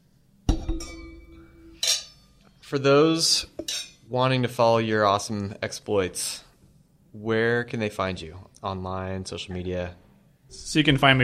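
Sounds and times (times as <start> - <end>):
glasses clinking in a toast: 0.5 - 2.5, 3.6 - 4.0
speech: 2.7 - 6.5, 7.1 - 11.2.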